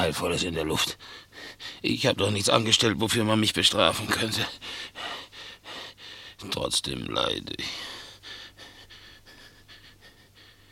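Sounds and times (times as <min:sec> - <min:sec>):
speech: 0:00.0 - 0:05.2, 0:06.4 - 0:08.0
labored breathing of a restless sleeper: 0:01.0 - 0:01.8, 0:04.5 - 0:06.4, 0:07.6 - 0:10.7.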